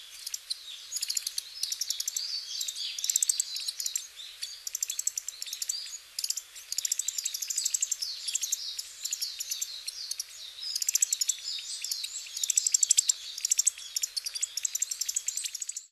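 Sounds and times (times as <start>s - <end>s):
varied tits calling: 0.0s - 15.9s.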